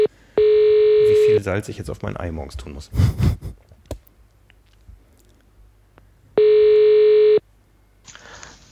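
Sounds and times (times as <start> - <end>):
loud steady telephone ringback tone: 0.0 - 1.4, 6.4 - 7.4
speech: 1.4 - 3.4.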